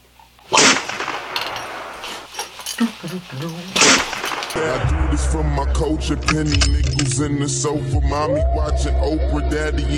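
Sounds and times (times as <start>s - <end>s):
gunshot sound effect: 0.5s - 2.0s
speech: 2.8s - 9.9s.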